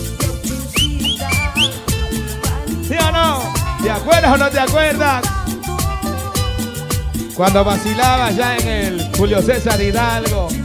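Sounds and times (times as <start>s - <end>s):
loud thumping dance music: 0.4s - 10.6s
audience at a dance event whistling a short tune: 0.7s - 2.0s
speech: 3.8s - 5.4s, 7.4s - 10.6s.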